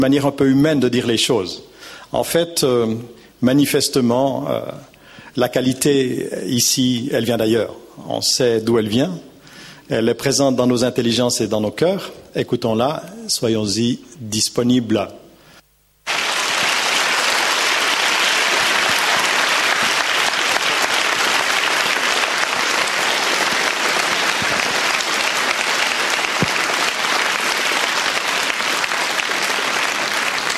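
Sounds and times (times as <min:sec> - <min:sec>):
speech: 0:00.0 - 0:09.3, 0:09.9 - 0:15.2
large audience applauding in a full hall in Saint-Maurice: 0:16.1 - 0:30.5.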